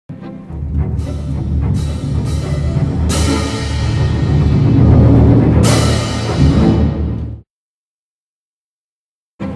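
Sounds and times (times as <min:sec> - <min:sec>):
orchestral bass drum: 0:00.6 - 0:07.4
cymbals: 0:00.8 - 0:07.4.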